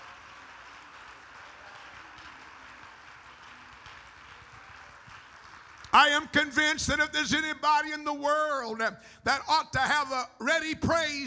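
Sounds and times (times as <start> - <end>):
crowd clapping: 0.0 - 7.2
speech: 6.0 - 11.2.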